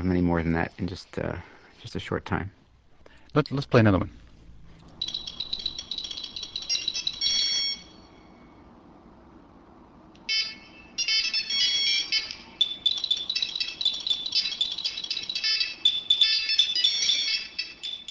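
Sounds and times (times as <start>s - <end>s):
speech: 0.0s - 2.6s, 3.3s - 4.2s
several phones ringing and chirping at once: 5.0s - 8.6s, 10.2s - 18.1s.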